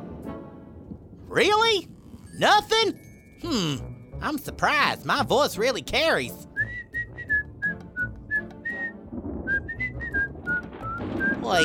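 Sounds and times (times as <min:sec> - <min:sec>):
speech: 0:01.3 - 0:06.4
distant whistling of a simple tune: 0:06.5 - 0:11.6.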